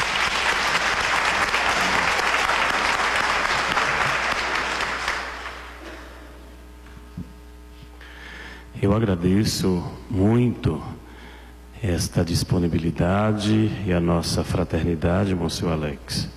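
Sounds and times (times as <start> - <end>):
audience applause: 0.0 - 5.8
speech: 8.8 - 11.0, 11.8 - 16.3.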